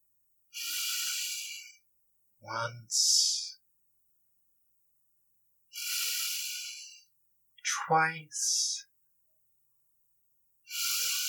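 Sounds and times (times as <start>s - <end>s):
deep inhale: 0.6s - 1.8s, 5.7s - 7.0s, 10.7s - 11.2s
speech: 2.4s - 3.2s, 7.9s - 8.9s.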